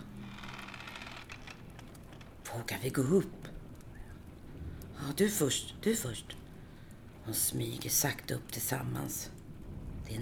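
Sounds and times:
door creaking: 0.0s - 2.4s
speech: 2.5s - 3.5s, 5.0s - 6.4s, 7.2s - 9.4s, 10.1s - 10.2s.

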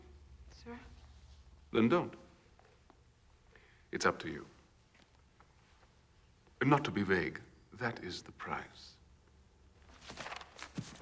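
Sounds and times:
speech: 0.6s - 1.0s, 1.7s - 2.2s, 3.9s - 4.6s, 6.6s - 9.0s
paper crumpling: 9.8s - 10.9s.

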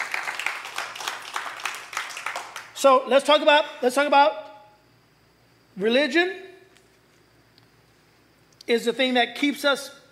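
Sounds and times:
room full of people clapping: 0.0s - 2.8s
speech: 2.8s - 4.4s, 5.8s - 6.5s, 8.7s - 10.0s.

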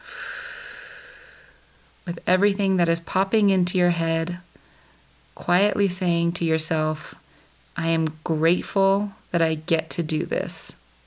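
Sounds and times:
slow exhale: 0.0s - 1.9s
speech: 2.1s - 4.4s, 5.4s - 7.2s, 7.8s - 10.8s.

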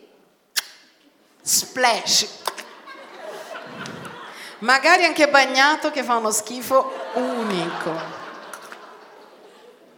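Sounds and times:
voice imitating a wet cheek kiss with the mouth: 0.6s - 0.8s
speech: 1.5s - 2.5s, 4.6s - 8.1s
laughter: 2.6s - 4.7s, 6.6s - 9.9s.

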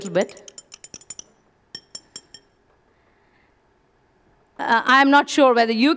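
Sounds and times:
speech: 0.0s - 0.5s, 4.6s - 5.9s
spoon clinking against a glass while stirring salt into water: 0.0s - 2.6s.

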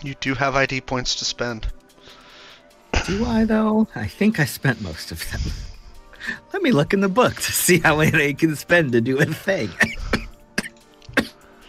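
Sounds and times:
speech: 0.0s - 1.8s, 3.0s - 10.0s
sharp dry coughs: 9.6s - 11.4s.

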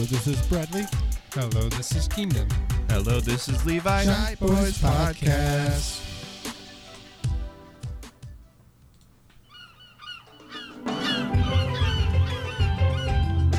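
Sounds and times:
speech: 0.0s - 6.1s
seagulls squawking: 8.5s - 13.5s.

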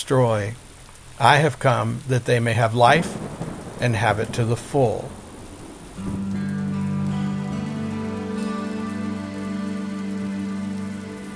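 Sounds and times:
speech: 0.0s - 0.6s, 1.2s - 3.2s, 3.8s - 5.2s, 6.0s - 6.3s
steady rain pattering against a window: 0.0s - 11.3s
sustained low musical tone humming: 6.0s - 11.3s.

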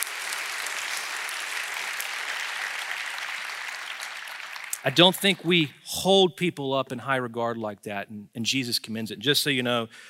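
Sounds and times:
church audience applause during a service: 0.0s - 5.7s
speech: 4.8s - 10.0s.

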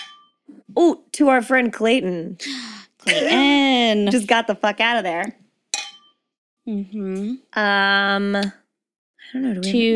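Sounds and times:
glasses clinking in a toast: 0.0s - 0.4s, 5.8s - 6.2s
speech: 0.8s - 5.4s, 6.7s - 8.6s, 9.3s - 9.9s.

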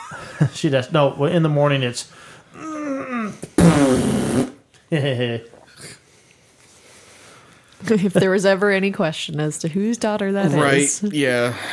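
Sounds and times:
speech: 0.1s - 2.7s, 4.9s - 6.0s, 7.8s - 11.7s
baby girl farting over a baby monitor: 3.6s - 4.6s.

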